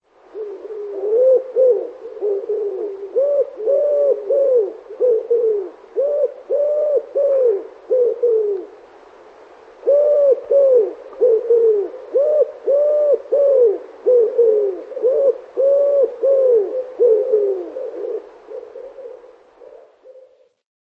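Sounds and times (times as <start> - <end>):
wood pigeon: 0.3 - 8.8, 9.8 - 20.6.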